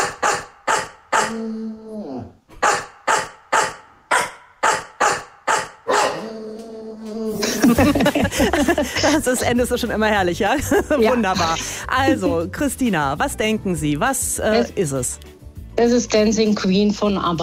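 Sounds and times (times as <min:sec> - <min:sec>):
bulldog barks pitched and sequenced into a pop tune: 0:00.0 - 0:01.4, 0:02.6 - 0:06.3
speech: 0:01.3 - 0:01.7, 0:07.7 - 0:17.4
laughter: 0:07.3 - 0:09.8, 0:10.5 - 0:12.5.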